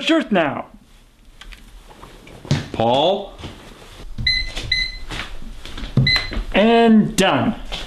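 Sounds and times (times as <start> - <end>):
speech: 0.0 - 0.8, 2.8 - 3.4, 6.6 - 7.6
microwave oven short bright electronic beeps: 4.2 - 5.1, 6.0 - 6.4.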